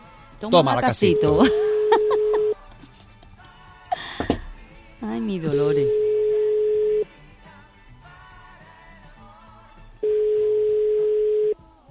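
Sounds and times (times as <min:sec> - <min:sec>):
speech: 0:00.4 - 0:01.7
telephone ringback tone of an unanswered call: 0:01.0 - 0:02.6, 0:05.8 - 0:07.1, 0:10.0 - 0:11.6
laughter: 0:01.2 - 0:03.4.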